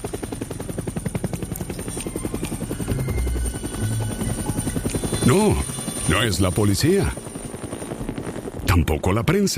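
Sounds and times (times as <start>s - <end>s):
helicopter rotor chopping overhead: 0.0s - 9.5s
low rumbling drone: 1.9s - 6.6s
speech: 5.3s - 7.2s, 8.8s - 9.5s.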